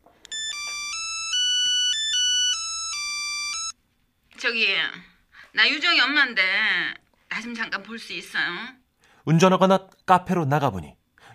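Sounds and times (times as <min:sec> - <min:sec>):
electronic phone ringtone ringing: 0:00.3 - 0:03.8
speech: 0:04.4 - 0:11.0.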